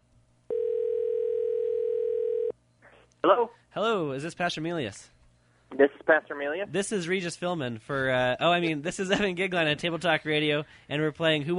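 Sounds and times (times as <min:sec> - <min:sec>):
faint low hum: 0:00.0 - 0:11.5
telephone dial tone: 0:00.5 - 0:02.5
speech: 0:03.2 - 0:11.5.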